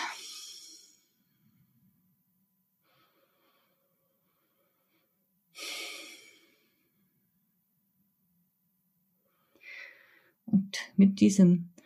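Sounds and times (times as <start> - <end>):
slow deep breathing while sitting upright: 0.0 - 1.7, 2.8 - 7.2, 9.2 - 10.4
speech: 10.5 - 11.8.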